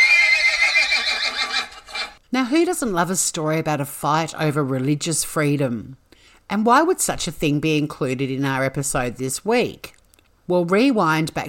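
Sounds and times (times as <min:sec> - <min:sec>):
horse neighing: 0:00.0 - 0:02.2
speech: 0:02.3 - 0:11.4.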